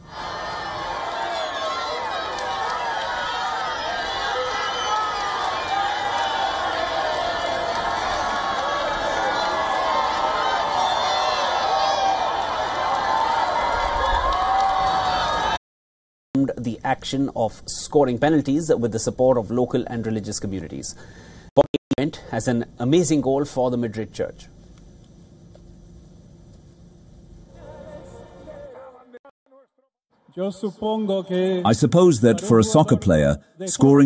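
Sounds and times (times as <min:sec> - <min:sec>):
huge stadium crowd of around 80,000 people roaring and cheering: 0:00.0 - 0:15.6
speech: 0:16.9 - 0:21.7, 0:22.3 - 0:24.5, 0:30.4 - 0:34.0.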